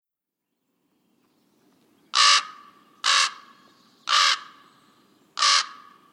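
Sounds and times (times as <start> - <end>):
Common raven croaking: 2.1 - 4.6, 5.4 - 6.1.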